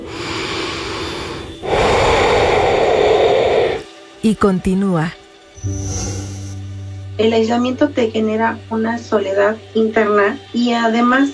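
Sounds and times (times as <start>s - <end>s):
single deep breathy inhale: 0.0s - 3.9s
speech: 4.2s - 6.4s, 7.2s - 11.3s.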